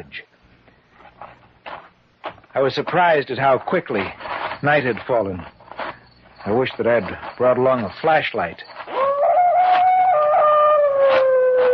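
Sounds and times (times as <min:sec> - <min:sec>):
speech: 0:00.0 - 0:00.3, 0:02.6 - 0:05.6, 0:06.4 - 0:08.7
distant dog howling across a lake: 0:08.9 - 0:11.7.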